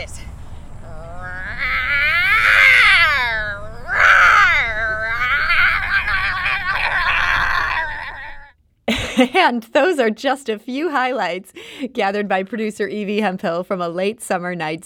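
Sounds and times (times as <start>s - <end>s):
person imitating a lion's roar: 0.8s - 8.5s
laughter: 5.4s - 9.5s
speech: 9.2s - 14.8s.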